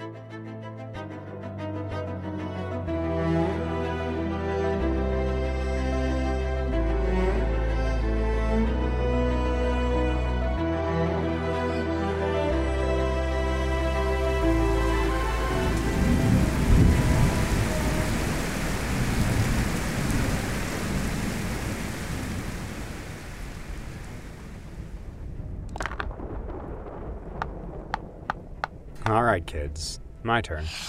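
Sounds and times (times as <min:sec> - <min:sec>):
sustained musical tones: 0:00.0 - 0:18.4
heavy rain pouring: 0:13.5 - 0:29.4
speech: 0:29.2 - 0:30.8.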